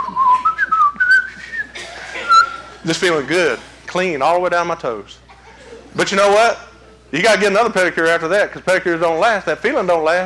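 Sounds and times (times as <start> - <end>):
person whistling a soap advertising jingle: 0.0 - 2.8
laughter: 0.0 - 3.9, 5.2 - 6.3
speech: 2.8 - 5.2, 6.0 - 10.2.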